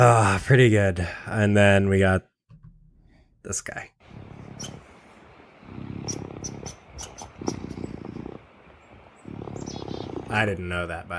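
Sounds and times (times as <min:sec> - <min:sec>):
speech: 0:00.0 - 0:02.3, 0:03.4 - 0:04.0, 0:10.3 - 0:11.1
faint high squeaks and chirps: 0:04.5 - 0:04.9, 0:06.0 - 0:08.2
raccoon purring: 0:05.5 - 0:10.9.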